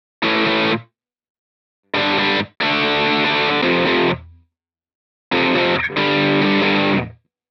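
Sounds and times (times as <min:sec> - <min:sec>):
jam riff: 0:02.0 - 0:04.4, 0:05.3 - 0:07.2.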